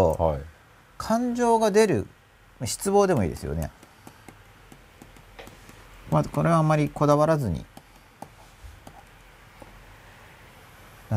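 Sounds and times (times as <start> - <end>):
speech: 0.0 - 3.8, 6.1 - 7.7
low hum: 0.0 - 11.1
marker with faint ink tapping and scratching against a board: 3.1 - 9.8.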